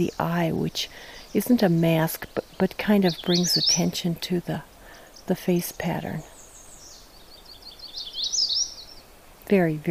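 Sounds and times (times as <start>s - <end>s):
speech: 0.0s - 4.7s, 5.3s - 6.3s, 9.5s - 9.9s
faint chirps of other birds: 0.0s - 9.2s
indigo bunting singing: 0.0s - 9.9s.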